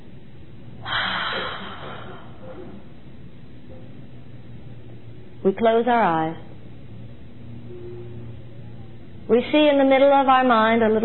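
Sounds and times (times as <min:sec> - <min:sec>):
deep inhale during a guided relaxation and healing meditation: 0:00.8 - 0:02.9
speech: 0:05.4 - 0:06.5, 0:09.3 - 0:11.0.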